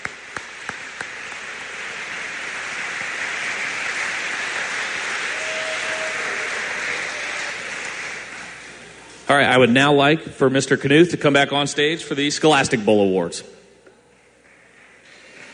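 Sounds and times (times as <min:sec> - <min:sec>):
large audience applauding at a high school awards ceremony: 0:00.0 - 0:09.0
speech: 0:09.3 - 0:13.6.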